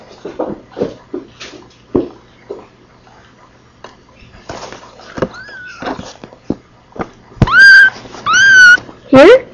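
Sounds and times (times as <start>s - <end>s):
kittens mewing: 5.1s - 6.2s, 7.4s - 8.9s.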